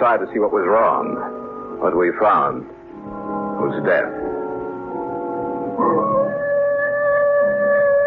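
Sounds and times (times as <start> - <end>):
speech: 0.0 - 2.8, 3.6 - 4.3, 5.8 - 6.2
wolf howling at night: 5.5 - 8.0.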